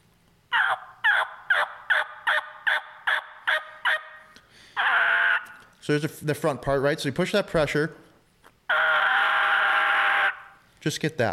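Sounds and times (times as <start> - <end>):
raspy turkey yelps blown on a mouth call: 0.5 - 5.6, 8.7 - 10.6
speech: 5.9 - 8.1, 10.8 - 11.3.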